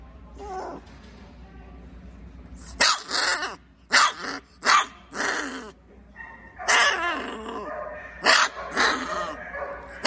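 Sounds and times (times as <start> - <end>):
puppy barking and growling: 2.7 - 10.0.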